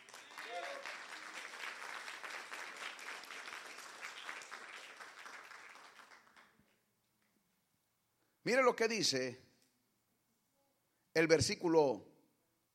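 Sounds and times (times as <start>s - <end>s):
church congregation applauding: 0.0s - 6.8s
speech: 8.5s - 9.4s, 11.2s - 12.1s.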